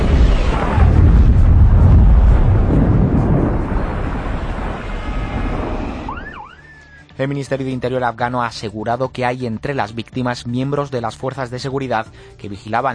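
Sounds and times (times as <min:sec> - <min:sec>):
debris crackle: 0:00.0 - 0:06.2
suicide bomber's explosive vest exploding in central Kabul Afghanistan: 0:00.0 - 0:06.4
speech: 0:07.2 - 0:12.9.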